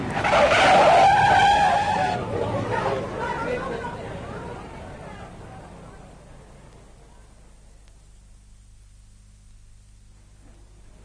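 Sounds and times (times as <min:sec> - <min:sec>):
car tires screeching in a loud skid: 0:00.0 - 0:03.4
car engine roaring as the car accelerates: 0:00.0 - 0:06.8
faint voices murmuring: 0:01.7 - 0:07.8.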